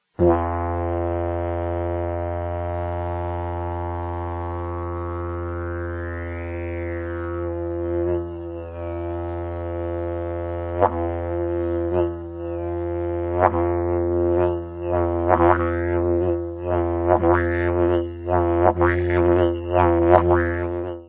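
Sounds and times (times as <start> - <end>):
didgeridoo: 0.2 - 21.0.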